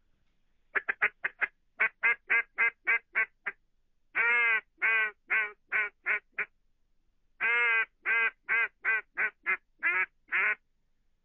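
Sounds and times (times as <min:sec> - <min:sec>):
soft quacks on a 20-year-old wooden duck call: 0:00.8 - 0:03.6, 0:04.2 - 0:06.5, 0:07.4 - 0:10.6.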